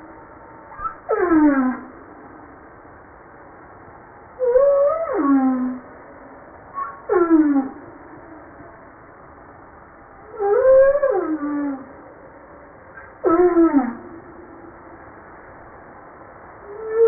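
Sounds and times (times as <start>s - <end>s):
low hiss: 0.0s - 17.0s
humpback whale song harmonic cries: 0.7s - 2.0s, 4.4s - 5.9s, 6.7s - 8.4s, 10.2s - 12.0s, 13.2s - 14.6s, 16.6s - 17.0s.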